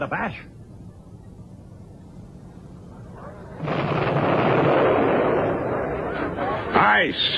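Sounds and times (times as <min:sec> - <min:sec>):
speech: 0:00.0 - 0:00.6, 0:07.0 - 0:07.3
distant battle artillery fire: 0:03.6 - 0:06.8
distant battle explosions: 0:03.6 - 0:07.3.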